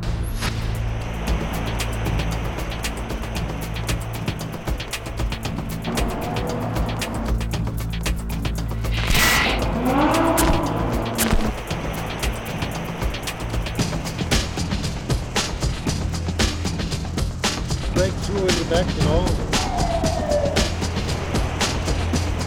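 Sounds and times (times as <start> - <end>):
sports car tire squeal: 0.0 - 7.5, 8.7 - 13.3, 18.9 - 22.4
sports car engine roaring and revving under a freeway: 0.6 - 22.4.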